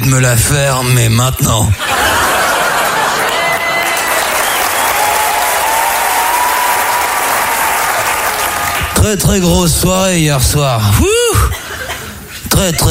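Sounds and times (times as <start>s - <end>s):
speech: 0.1s - 2.3s, 9.0s - 11.2s, 12.5s - 12.8s
laughter: 1.8s - 4.2s, 11.1s - 12.8s
audience applause for a standing ovation: 2.0s - 9.1s.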